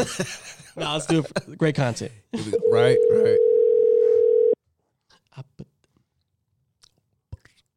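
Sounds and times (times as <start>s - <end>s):
speech: 0.0s - 3.5s
phone call ringing tone: 2.6s - 4.6s.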